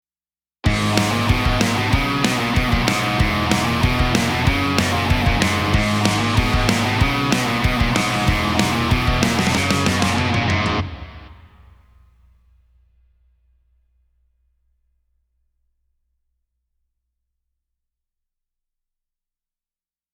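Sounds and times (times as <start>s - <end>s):
drums: 0.6s - 14.6s.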